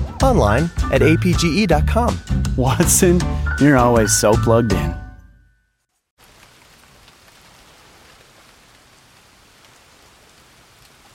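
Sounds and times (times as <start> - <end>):
speech: 0.2 - 5.0
rain pouring: 6.2 - 11.1.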